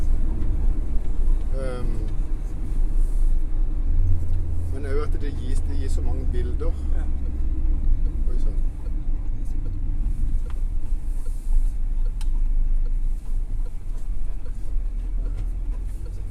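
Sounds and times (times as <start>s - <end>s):
heavy low rumble of a car engine: 0.0s - 16.2s
road noise: 0.0s - 16.2s
speech: 5.9s - 7.2s.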